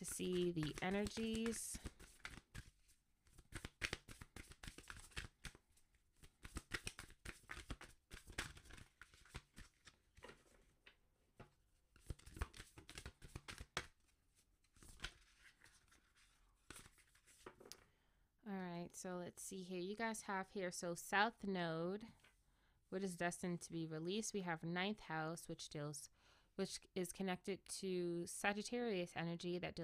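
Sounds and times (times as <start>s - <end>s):
speech: 0.0s - 1.9s, 19.0s - 22.2s, 22.9s - 29.8s
astrology card deck being shuffled: 0.0s - 5.6s, 6.2s - 10.5s, 12.0s - 13.9s.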